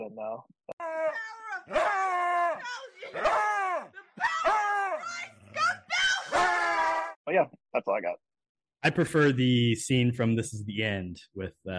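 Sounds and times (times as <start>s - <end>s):
speech: 0.1s - 4.3s, 7.3s - 8.2s, 8.8s - 11.7s
girl shouting: 1.0s - 7.2s
dog howling and yowling: 1.7s - 7.1s.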